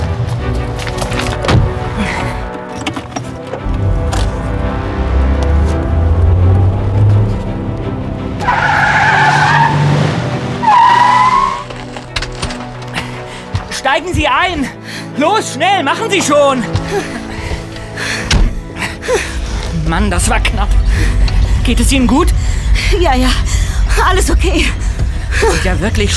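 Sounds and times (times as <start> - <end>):
car engine rumbling as vehicle accelerates away: 0.0 - 13.7, 16.8 - 26.1
car tires screeching as car speeds off: 3.8 - 12.1, 17.7 - 26.1
speech: 15.2 - 17.2, 19.9 - 20.8, 21.6 - 23.4, 24.0 - 24.8, 25.4 - 26.1.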